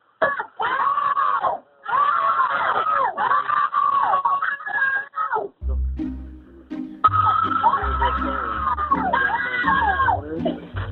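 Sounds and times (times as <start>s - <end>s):
children screaming for help from underground: 0.2s - 5.5s, 7.0s - 10.3s
low rumbling noise: 5.6s - 9.0s
laughter: 6.6s - 10.9s.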